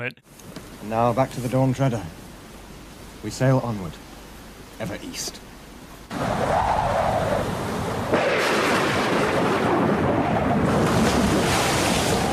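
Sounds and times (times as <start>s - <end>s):
speech: 0.0s - 2.2s, 3.2s - 4.0s, 4.8s - 5.5s
wind over a stormy sea: 0.0s - 12.3s
crashing surf on a stormy sea: 6.1s - 12.3s.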